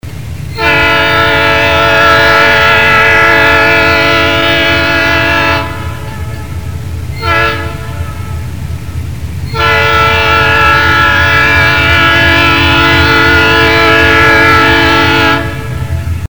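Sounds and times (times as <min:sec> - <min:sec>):
diesel engine: 0:00.0 - 0:16.3.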